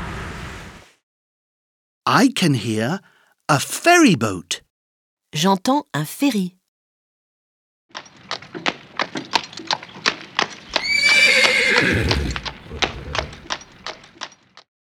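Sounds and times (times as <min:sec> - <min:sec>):
speech: 0:02.1 - 0:04.6, 0:05.3 - 0:06.6
clip-clopping hoofbeats: 0:07.9 - 0:14.7
horse neighing: 0:10.7 - 0:13.6.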